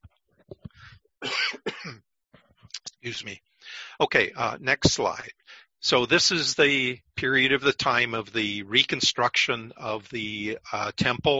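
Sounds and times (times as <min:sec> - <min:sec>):
person clearing throat: 0:01.2 - 0:02.0
person coughing: 0:01.2 - 0:02.0
speech: 0:03.0 - 0:11.3.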